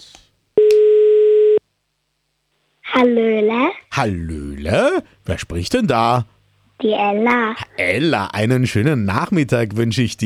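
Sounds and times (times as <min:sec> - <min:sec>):
telephone ring tone beep after a number is dialed: 0:00.6 - 0:01.6
speech: 0:03.0 - 0:10.2.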